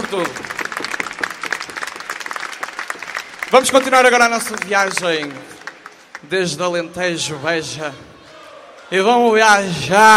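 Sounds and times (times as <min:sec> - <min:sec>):
audience applause in a hall at a live stage show: 0:00.0 - 0:06.8
speech: 0:00.1 - 0:00.5, 0:03.5 - 0:05.6, 0:06.2 - 0:08.1, 0:08.9 - 0:10.1.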